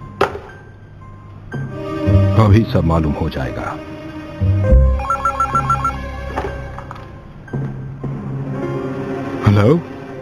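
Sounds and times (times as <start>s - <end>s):
speech: 2.4s - 4.7s, 9.5s - 9.9s
telephone ringback tone on an outgoing call to a doctor: 4.9s - 6.1s.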